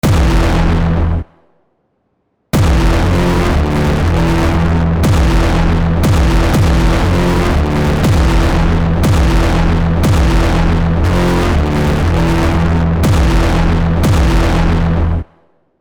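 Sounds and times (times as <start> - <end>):
discharge: 0.0 - 1.0, 2.6 - 14.9.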